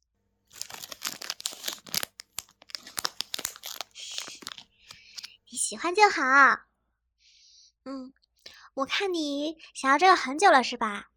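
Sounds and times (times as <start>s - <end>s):
wrapping paper crinkling and tearing as a birthday present is unwrapped: 0.5s - 5.3s
speech: 5.7s - 6.7s, 7.9s - 8.2s, 8.8s - 11.1s.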